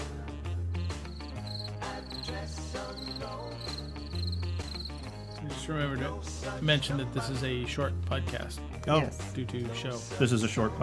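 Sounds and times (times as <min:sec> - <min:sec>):
crickets chirping: 0:00.8 - 0:05.5
speech: 0:05.6 - 0:10.8.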